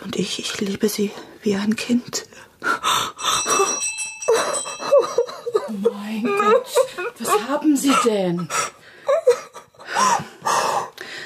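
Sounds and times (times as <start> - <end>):
speech: 0.1 - 3.1, 5.7 - 8.7
woman weeping with whimpering catches of breath and shaky sobs: 3.4 - 10.9.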